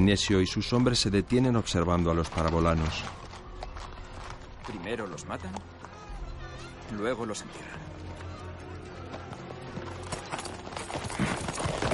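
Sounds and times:
speech: 0.1s - 3.2s, 4.7s - 5.7s, 6.9s - 7.9s
horses galloping through city streets: 0.5s - 6.0s, 9.0s - 11.9s.

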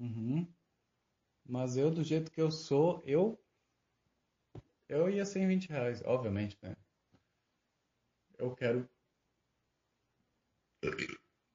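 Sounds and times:
speech: 1.5s - 3.4s, 4.9s - 6.8s, 8.4s - 9.0s
burp: 10.8s - 11.4s.

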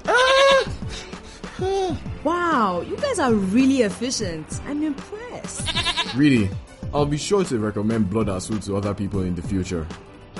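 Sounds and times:
goat bleating: 0.1s - 0.7s, 5.6s - 6.2s
speech: 2.2s - 10.1s.

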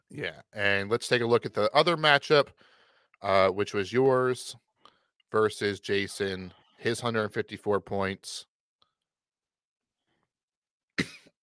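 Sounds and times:
speech: 0.1s - 4.7s, 5.3s - 8.5s
single sharp loud cough: 11.0s - 11.3s.

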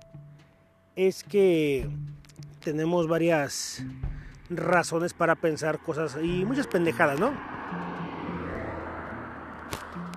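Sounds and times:
speech: 1.0s - 7.8s
car passing by: 4.1s - 10.1s.

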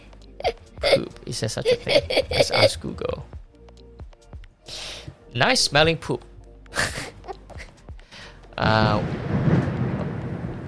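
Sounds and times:
speech: 1.3s - 3.3s, 5.4s - 6.3s, 8.6s - 9.2s
laughter: 1.6s - 3.0s
loud sustained thunder rumble: 8.7s - 10.6s.

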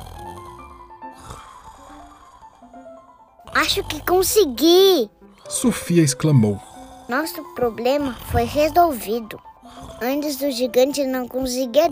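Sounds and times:
sharp snorting burst: 0.0s - 2.8s, 3.4s - 4.6s, 6.6s - 10.5s
several sleepers snoring with deep rumbles and nasal tones: 0.0s - 11.9s
speech: 3.6s - 11.9s.

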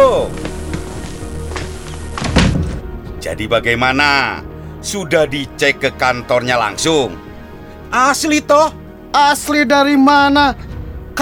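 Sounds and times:
house door thudding: 0.4s - 3.2s
speech: 3.3s - 7.2s, 7.9s - 11.1s.

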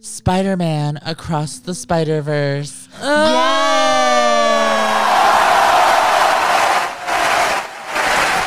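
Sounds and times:
speech: 0.3s - 4.0s
award show audience cheering and shouting: 3.1s - 8.4s.

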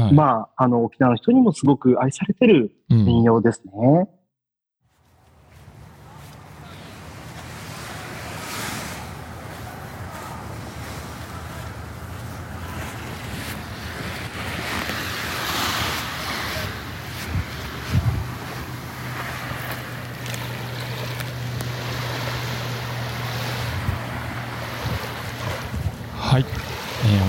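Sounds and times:
speech: 0.1s - 4.2s
low engine-like hum: 5.0s - 27.2s
gusts of wind buffeting the microphone: 5.4s - 27.2s
ocean waves washing onto Naminoue Beach in Naha Okinawa Japan: 5.4s - 27.2s.

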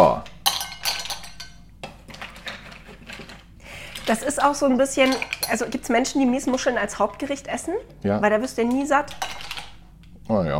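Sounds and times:
plates and a ladle clinking while serving food: 0.4s - 7.3s, 8.6s - 9.8s
speech: 4.1s - 9.4s, 10.3s - 10.5s.

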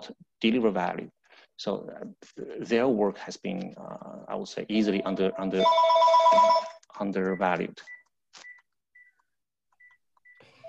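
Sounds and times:
speech: 0.0s - 8.5s
home landline phone ringing with an incoming spam call: 5.0s - 6.8s.

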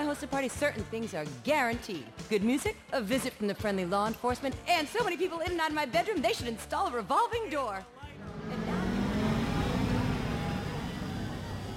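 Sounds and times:
speech: 0.2s - 8.6s
car engine roaring as it pulls off quickly: 8.1s - 11.7s.

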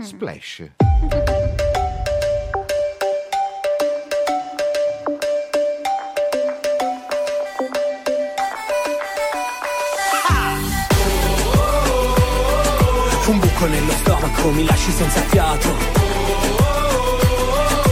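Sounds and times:
speech: 0.0s - 1.5s, 13.3s - 16.6s
heavier bass section of pop song: 0.8s - 3.0s, 10.3s - 17.8s
pop song intro with bright synth melody over punchy beat: 0.8s - 17.8s.

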